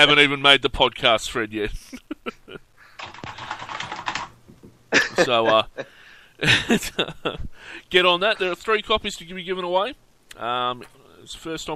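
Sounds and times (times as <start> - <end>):
speech: 0.0 - 2.0, 4.9 - 11.7
laughter: 1.8 - 2.6, 4.9 - 7.4
typing on a computer keyboard: 3.0 - 4.4.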